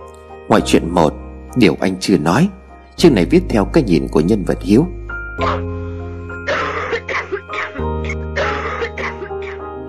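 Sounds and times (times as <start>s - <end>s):
speech: 0.5s - 5.8s
woman coughing loudly in harsh throaty bursts: 6.4s - 9.6s.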